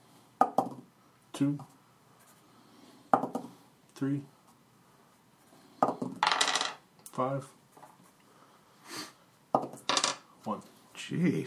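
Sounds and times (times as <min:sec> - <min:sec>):
speech: 0:01.4 - 0:01.7, 0:04.0 - 0:04.3, 0:07.2 - 0:07.6, 0:10.4 - 0:11.4
dice rolling on a tabletop: 0:05.8 - 0:06.8, 0:09.5 - 0:10.3.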